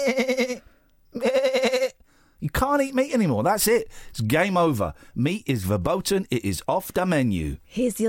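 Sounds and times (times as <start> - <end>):
speech: 0.0 - 0.4, 2.7 - 8.0
sheep bleating with loud wavering cries: 1.2 - 2.0.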